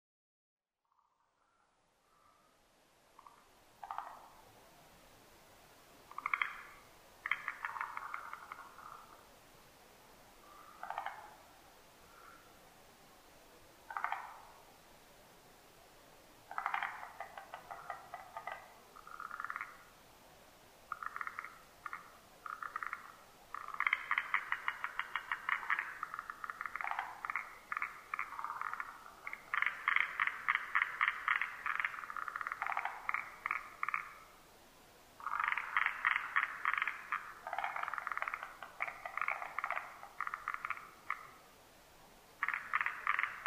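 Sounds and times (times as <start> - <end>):
forest green tree frog calling: 0.8 - 2.5, 3.1 - 4.5, 6.0 - 9.3, 10.4 - 12.6, 13.8 - 14.7, 16.4 - 20.0, 20.8 - 34.5, 35.1 - 41.6, 42.4 - 43.4.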